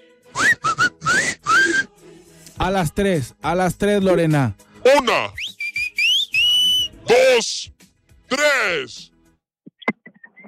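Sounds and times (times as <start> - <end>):
woman weakly attempting to whistle loudly as a challenge: 0.4 - 2.0, 5.4 - 7.0
speech: 2.6 - 5.4, 7.1 - 9.1.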